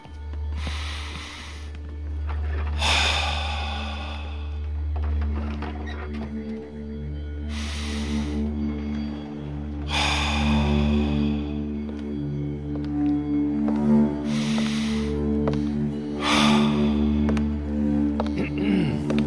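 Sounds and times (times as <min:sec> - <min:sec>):
steady low humming drone: 0:00.0 - 0:19.2
slow deep breaths: 0:00.5 - 0:05.4, 0:07.4 - 0:12.4, 0:14.1 - 0:19.2.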